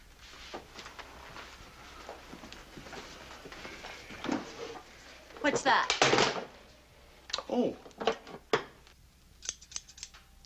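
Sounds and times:
speech: 5.5 - 6.4, 7.5 - 7.9
scissors snipping: 9.4 - 10.1.

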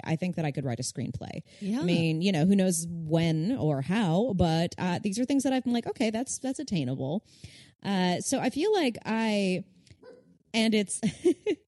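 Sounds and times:
speech: 0.0 - 9.8, 10.5 - 11.6
small pet dog yipping: 10.0 - 10.3.

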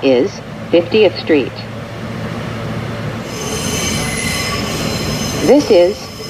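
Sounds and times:
speech: 0.0 - 1.7, 5.4 - 6.2
low rumbling hum: 0.0 - 6.2
subway train wheels squealing against the rails: 3.1 - 6.2.

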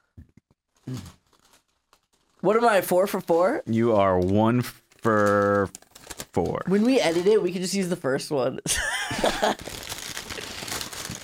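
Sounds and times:
burger patty paper being unwrapped, crinkling and rustling: 0.6 - 7.5, 9.2 - 11.2
speech: 0.9 - 1.2, 2.4 - 5.8, 6.4 - 9.8.

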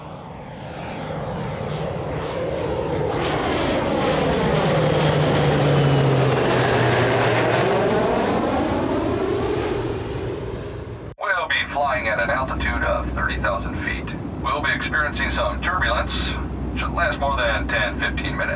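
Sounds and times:
airliner engines roaring during takeoff: 0.0 - 18.5
thin high-pitched airliner turbine whine: 0.0 - 18.5.

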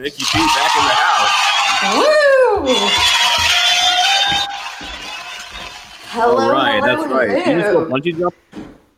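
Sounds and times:
speech: 0.0 - 3.5, 6.2 - 8.6
crowd applauding and cheering: 0.0 - 6.8.

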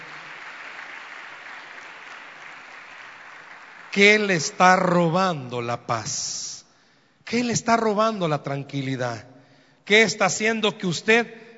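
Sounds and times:
audience applauding: 0.0 - 4.6
speech: 3.9 - 6.6, 7.3 - 9.3, 9.9 - 11.4.

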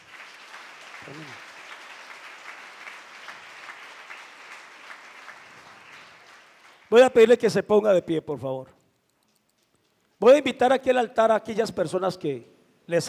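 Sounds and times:
audience applauding: 0.0 - 7.0
speech: 1.0 - 1.5, 6.9 - 8.8, 10.2 - 13.0.

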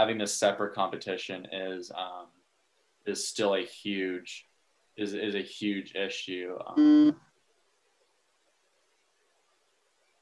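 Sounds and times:
speech: 0.0 - 2.4, 3.0 - 7.3
short buzzy electronic beep: 6.8 - 7.2.

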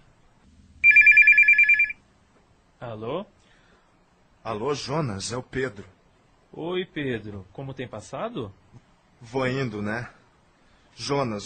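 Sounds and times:
telephone ringing: 0.8 - 2.1
speech: 2.8 - 3.4, 4.4 - 8.6, 9.2 - 10.2, 11.0 - 11.4.

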